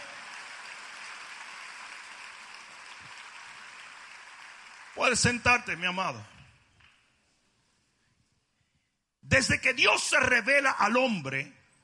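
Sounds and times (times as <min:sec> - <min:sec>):
church audience applauding: 0:00.0 - 0:05.7
speech: 0:05.0 - 0:06.4, 0:09.3 - 0:11.6.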